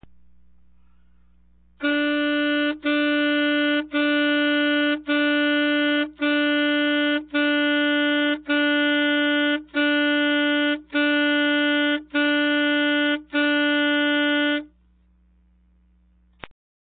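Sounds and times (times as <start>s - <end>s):
saxophone attack: 1.8s - 14.8s.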